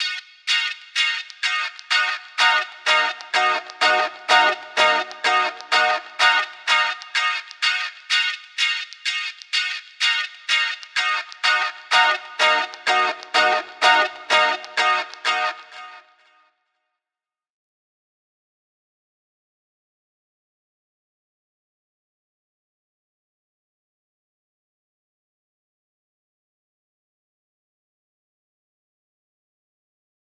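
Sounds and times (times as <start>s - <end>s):
frozen guitar tone: 0.0s - 16.4s.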